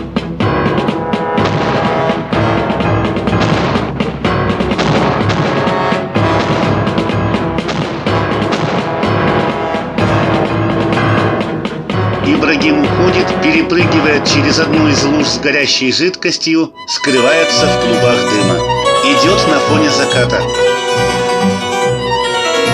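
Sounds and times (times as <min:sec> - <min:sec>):
dense continuous backdrop: 0:00.0 - 0:22.7
cannon firing from a ship at a shipyard shore: 0:00.7 - 0:11.6
speech: 0:13.7 - 0:20.7.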